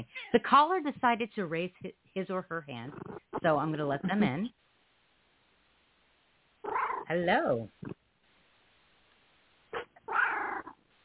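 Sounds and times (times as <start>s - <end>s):
speech: 0.0s - 4.6s, 6.6s - 8.0s
cat meowing over a phone line: 6.6s - 7.1s, 9.8s - 10.8s.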